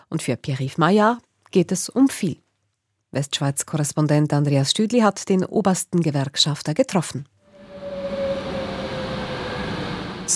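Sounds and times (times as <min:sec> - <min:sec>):
speech: 0:00.1 - 0:02.4, 0:03.1 - 0:07.3
train wheels and brakes whining: 0:07.4 - 0:10.3
double-decker train pulling into the platform: 0:07.5 - 0:10.3.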